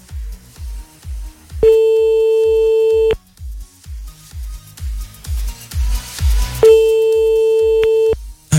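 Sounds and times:
thumping rhythmic beat: 0:00.1 - 0:08.5
telephone ringback tones: 0:01.6 - 0:03.2, 0:06.6 - 0:08.2.

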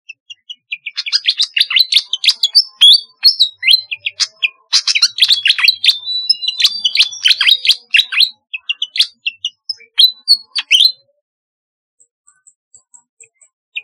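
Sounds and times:
flycatcher chattering series of high chirps and whistles: 0:00.3 - 0:11.0.

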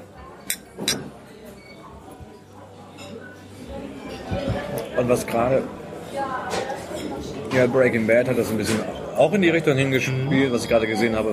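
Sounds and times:
low murmur of voices: 0:00.0 - 0:11.3
glasses clinking in a toast: 0:00.4 - 0:01.8
speech: 0:05.0 - 0:05.8, 0:07.5 - 0:11.3.

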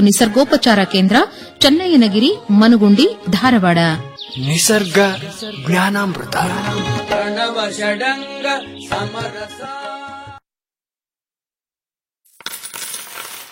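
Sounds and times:
speech: 0:00.0 - 0:10.0
coins dropping and clinking: 0:12.3 - 0:13.5.

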